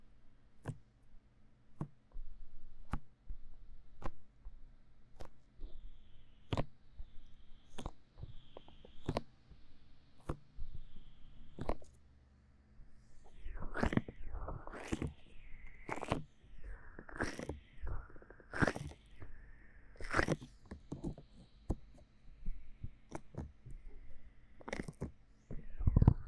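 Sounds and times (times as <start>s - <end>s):
faint low hum: 0.0s - 26.2s
aloe based sticky gel worked over an ear with wet clicks and pops: 4.0s - 4.2s, 5.1s - 5.8s, 7.6s - 9.4s, 11.5s - 12.0s, 13.3s - 19.4s, 20.0s - 22.0s, 23.0s - 23.8s, 24.6s - 26.2s
slippery sliding sounds of gel on an ear: 13.1s - 19.4s, 20.0s - 20.6s.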